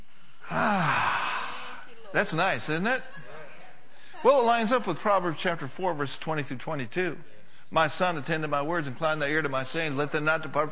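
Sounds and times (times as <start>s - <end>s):
deep breath during a guided breathing exercise let out as a voiced sigh: 0.2s - 1.9s
speech: 2.2s - 3.2s, 4.2s - 10.7s.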